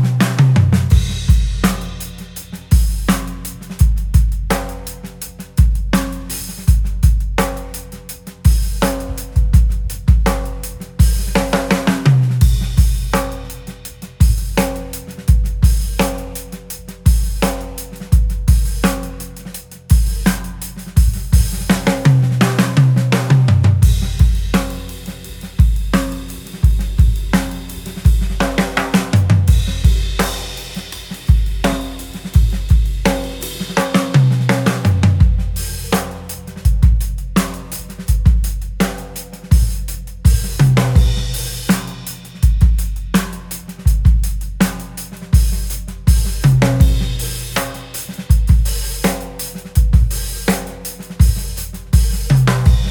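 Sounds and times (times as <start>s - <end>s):
backing track: 0.1s - 43.8s, 45.6s - 52.8s.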